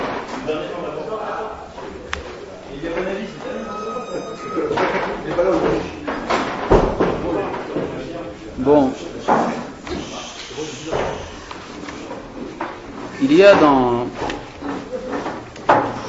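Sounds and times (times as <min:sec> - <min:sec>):
people murmuring: 0:00.0 - 0:16.0
people shuffling: 0:00.0 - 0:16.0
speech: 0:00.5 - 0:02.1, 0:02.8 - 0:03.7, 0:08.6 - 0:09.1, 0:13.3 - 0:14.2
lighter knock: 0:06.3 - 0:07.2
door pushed shut with a dull thud: 0:06.3 - 0:07.4.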